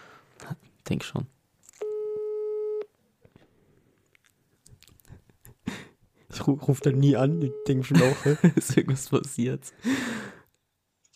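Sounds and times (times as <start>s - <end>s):
speech: 0.4s - 1.4s, 6.4s - 10.1s
telephone ringback tone on an outgoing call: 1.8s - 2.9s, 6.8s - 8.2s
laughter: 7.8s - 9.1s.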